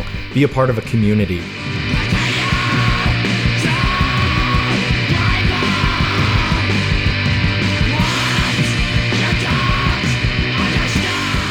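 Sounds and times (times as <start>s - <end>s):
distorted guitar riffs: 0.0s - 11.4s
speech: 0.4s - 1.9s
fast pounding drums: 1.4s - 11.4s
screamed vocals in hardcore punk: 1.9s - 7.1s, 7.8s - 11.4s.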